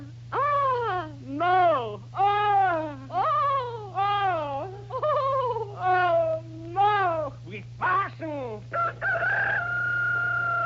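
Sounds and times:
steady low hum: 0.0s - 10.6s
rooster crowing: 8.7s - 10.6s.

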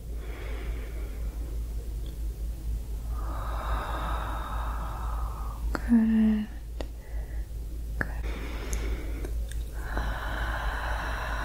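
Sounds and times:
person breathing in deeply: 0.0s - 1.5s, 3.1s - 7.5s, 8.2s - 11.4s
low steady hum: 0.0s - 11.4s
speech: 5.9s - 6.5s.

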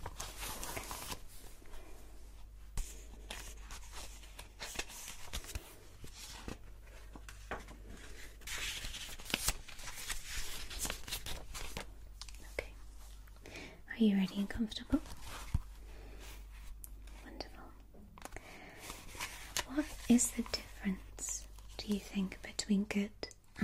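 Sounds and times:
crisp paper rustling as a new sheet is fetched: 0.0s - 2.0s, 2.8s - 12.5s, 18.4s - 20.7s
steady low hum: 0.0s - 23.6s
speech: 14.0s - 15.2s, 20.1s - 21.1s, 21.9s - 23.6s.

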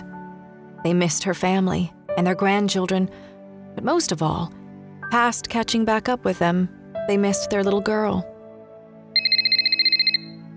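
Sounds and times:
speech: 0.8s - 8.3s
telephone ringing with an electronic trill: 9.2s - 10.4s.

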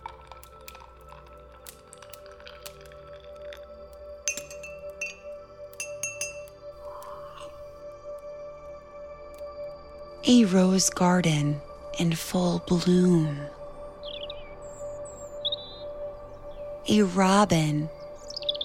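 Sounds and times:
old woman setting a china teacup against its saucer: 4.3s - 6.5s
speech: 10.3s - 13.6s, 16.9s - 18.0s.

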